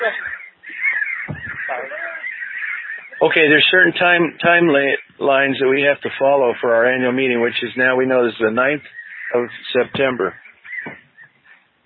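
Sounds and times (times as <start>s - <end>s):
crows cawing: 0.0s - 4.2s, 8.4s - 11.7s
speech: 3.2s - 10.4s.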